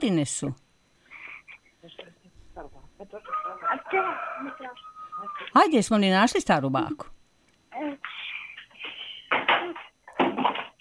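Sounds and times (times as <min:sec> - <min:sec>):
speech: 0:00.0 - 0:00.6, 0:02.6 - 0:08.2
rooster crowing: 0:03.2 - 0:05.5.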